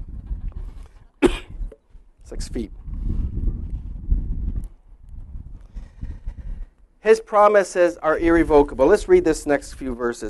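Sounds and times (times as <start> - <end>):
person coughing: 1.2 - 1.6
speech: 2.3 - 3.2, 7.0 - 10.2.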